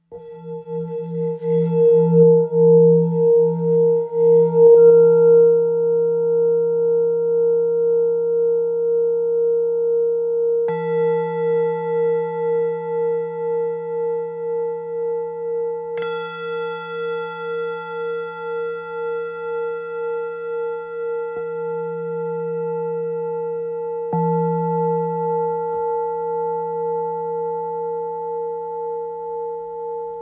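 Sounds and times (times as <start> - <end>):
old 635 g 16 cm bowl ringing in E: 0.0 - 30.2.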